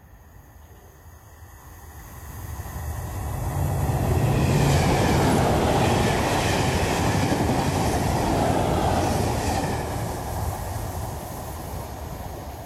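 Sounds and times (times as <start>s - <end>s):
high-speed train passing through level crossing: 0.0s - 12.6s
rattling high-speed train wheels: 2.8s - 12.6s.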